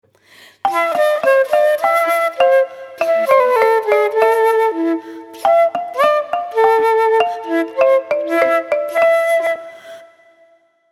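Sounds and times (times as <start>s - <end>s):
xylophone: 0.7s - 4.8s, 5.4s - 9.6s
transverse flute: 0.7s - 10.8s.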